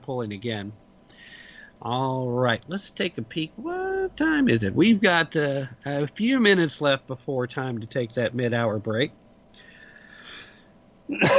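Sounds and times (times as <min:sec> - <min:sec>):
speech: 0:00.1 - 0:09.2, 0:11.1 - 0:11.3
person breathing in with a wheezy rasp: 0:01.1 - 0:01.8, 0:09.6 - 0:10.7
person coughing: 0:11.1 - 0:11.3.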